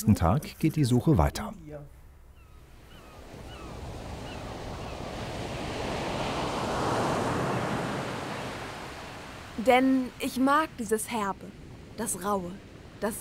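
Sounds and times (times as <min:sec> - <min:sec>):
speech: 0:00.0 - 0:01.9, 0:09.6 - 0:13.1
ocean surf and waves: 0:02.7 - 0:13.1
wind noise: 0:02.8 - 0:13.1.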